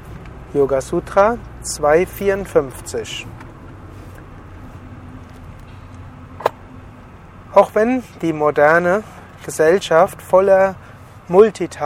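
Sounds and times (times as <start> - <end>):
car engine noise: 0.0 - 11.4
road noise inside a car: 0.0 - 11.8
speech: 0.5 - 3.4, 7.6 - 11.8
sharp click: 5.6 - 6.6.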